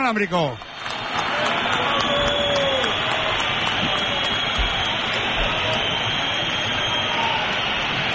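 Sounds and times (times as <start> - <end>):
football stadium crowd whistling in protest after the final whistle: 0.0 - 8.1.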